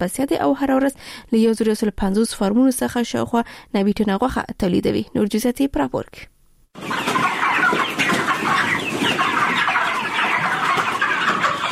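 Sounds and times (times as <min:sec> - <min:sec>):
speech: 0:00.0 - 0:07.1
flock of broiler chickens clucking on a poultry farm in Kandahar's Dand district: 0:06.8 - 0:11.7.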